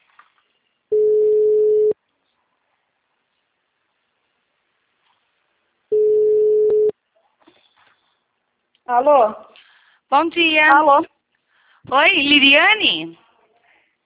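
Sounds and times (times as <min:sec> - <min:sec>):
telephone ringback tone while placing a call: 0:00.9 - 0:02.0, 0:05.9 - 0:06.9
speech: 0:08.9 - 0:09.5, 0:10.1 - 0:11.1, 0:11.8 - 0:13.2.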